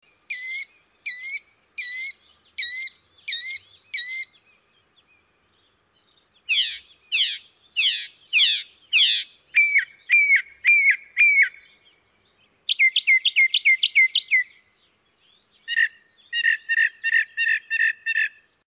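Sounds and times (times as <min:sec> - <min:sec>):
Northern Mockingbird: 0:00.3 - 0:04.4, 0:06.5 - 0:11.8, 0:12.6 - 0:14.6, 0:15.6 - 0:18.6.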